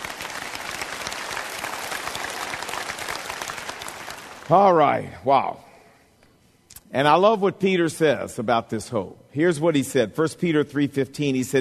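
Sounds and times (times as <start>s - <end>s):
large audience applauding: 0.0s - 4.6s
speech: 4.5s - 5.7s, 6.9s - 11.6s.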